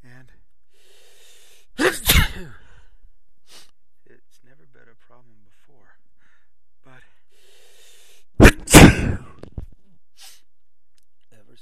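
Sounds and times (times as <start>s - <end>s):
loud sneeze from a person allergic to a cat: 1.8s - 2.6s, 8.4s - 9.5s
speech: 2.4s - 2.6s.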